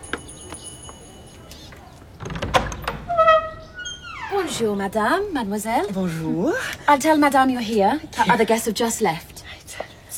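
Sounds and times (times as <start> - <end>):
door latch clicks: 2.2 - 3.1
rumbling clatter of a swinging door: 2.2 - 4.7
speech: 4.5 - 9.3.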